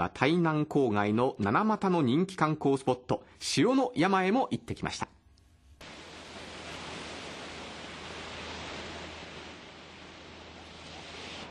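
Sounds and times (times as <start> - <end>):
speech: 0.0 - 5.2
Taiwan Strait waves washing onto the shore near Anping, Tainan, Taiwan: 5.8 - 11.5.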